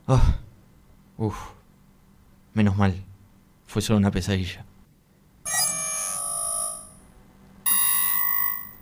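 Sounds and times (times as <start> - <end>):
speech: 0.1 - 0.4, 1.2 - 1.6, 2.6 - 3.1, 3.7 - 4.7
electronic alarm clock ringing: 5.5 - 7.0, 7.7 - 8.7.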